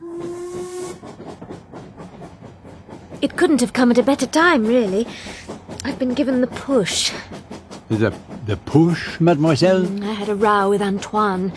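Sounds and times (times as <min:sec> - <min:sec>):
boat train steam whistle: 0:00.0 - 0:01.2
hissing steam: 0:00.0 - 0:11.5
rhythmic steam train chuffing: 0:00.0 - 0:11.5
speech: 0:03.2 - 0:05.4, 0:06.0 - 0:11.5.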